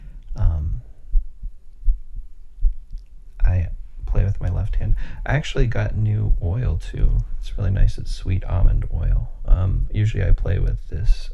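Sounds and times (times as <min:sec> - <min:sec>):
human heartbeat thumping: 0:00.4 - 0:02.0, 0:04.1 - 0:11.3
speech: 0:04.9 - 0:11.3.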